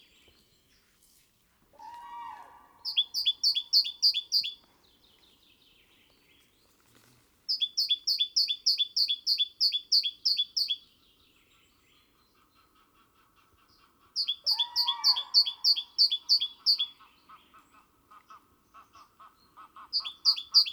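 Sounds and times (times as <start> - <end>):
great tit Parus major singing: 2.6 - 6.6, 7.5 - 12.2, 14.2 - 17.3, 19.9 - 20.7.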